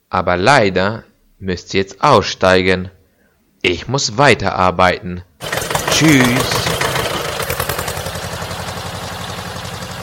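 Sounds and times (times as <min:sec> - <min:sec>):
speech: 0:00.1 - 0:03.0, 0:03.6 - 0:06.8
tractor engine idling: 0:05.4 - 0:10.0.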